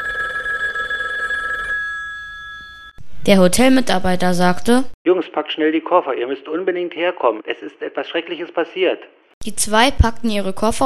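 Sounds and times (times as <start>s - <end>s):
telephone ringing with an electronic trill: 0.0s - 3.0s
high tone: 0.0s - 4.8s
speech: 3.2s - 10.8s.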